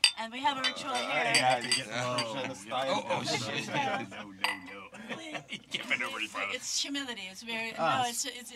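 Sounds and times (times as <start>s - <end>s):
glasses clinking in a toast: 0.0s - 6.6s
speech: 0.2s - 8.5s
people laughing: 0.6s - 6.8s.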